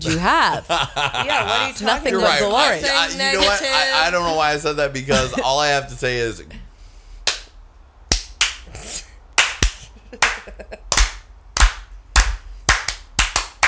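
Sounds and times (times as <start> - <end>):
laughter: 0.0 - 5.9, 10.1 - 10.9
speech: 0.0 - 6.6
slow hand clapping building toward a standing ovation: 9.4 - 13.6.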